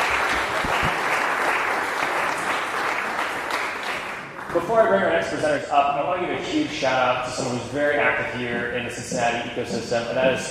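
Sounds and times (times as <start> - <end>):
audience applause: 0.0 - 4.6
speech: 4.6 - 10.4.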